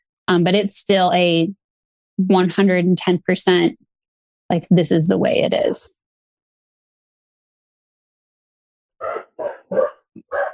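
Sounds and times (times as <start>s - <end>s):
speech: 0.3s - 1.6s, 2.2s - 3.8s, 4.5s - 6.0s
dogs barking at a door: 9.0s - 10.5s.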